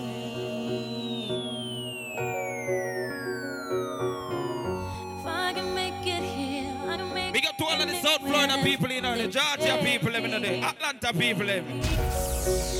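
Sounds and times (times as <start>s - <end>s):
emergency vehicle sirens wailing in city street: 0.8s - 9.9s
speech: 8.0s - 12.7s.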